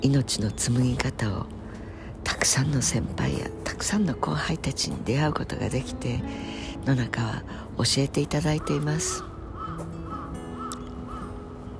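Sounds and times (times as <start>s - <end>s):
speech: 0.0s - 1.6s, 2.3s - 9.3s
crow cawing: 8.6s - 11.6s.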